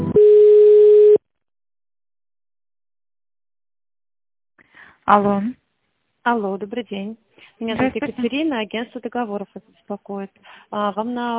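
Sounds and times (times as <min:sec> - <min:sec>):
electronic telephone line tones while a call is connected: 0:00.2 - 0:01.2
speech: 0:05.1 - 0:05.6, 0:06.2 - 0:11.3.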